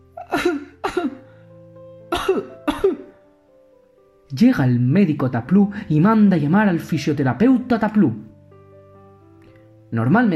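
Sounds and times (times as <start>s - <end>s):
harsh coughs in a coughing fit: 0.2s - 1.2s, 2.1s - 3.2s
speech: 4.3s - 8.3s, 9.9s - 10.3s.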